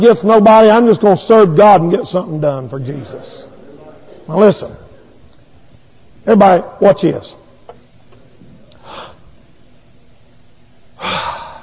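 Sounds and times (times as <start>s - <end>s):
speech: 0.0s - 3.5s, 4.3s - 4.8s, 6.3s - 7.4s
soft breath: 8.8s - 9.3s.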